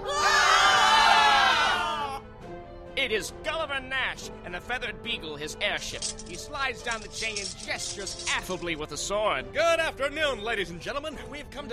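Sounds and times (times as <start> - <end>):
crowd screaming and shrieking while running for cover: 0.0 - 2.2
speech: 3.1 - 11.7.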